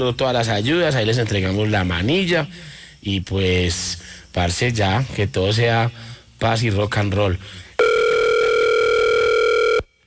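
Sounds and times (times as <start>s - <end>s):
speech: 0.0s - 7.6s
telephone ringing tone while a call is placed: 7.8s - 9.9s.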